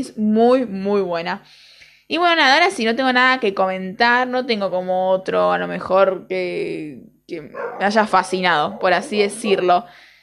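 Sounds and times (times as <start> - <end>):
speech: 0.0 - 10.0
female dog barking: 7.5 - 8.0.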